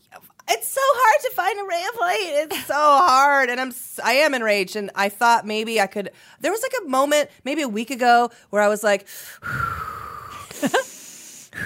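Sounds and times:
speech: 0:01.5 - 0:09.9, 0:10.6 - 0:10.9
raspy wheezing inhale: 0:09.1 - 0:11.6.

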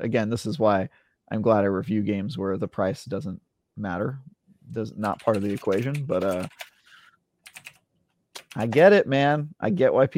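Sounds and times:
speech: 0:00.0 - 0:06.7, 0:08.5 - 0:10.1
mechanical keyboard typing: 0:05.0 - 0:06.7, 0:07.4 - 0:07.8, 0:08.4 - 0:08.9.

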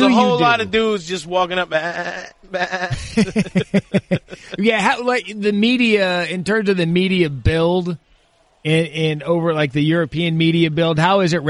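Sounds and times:
speech: 0:00.0 - 0:11.4
sheep bleating: 0:01.7 - 0:03.0
laughter: 0:02.6 - 0:06.1.

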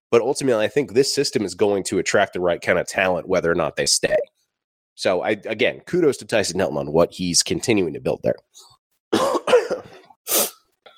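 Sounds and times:
speech: 0:00.1 - 0:04.4, 0:05.0 - 0:09.2
harsh wet coughs: 0:09.1 - 0:10.9
breathy throat-clearing rasp: 0:09.2 - 0:10.2.

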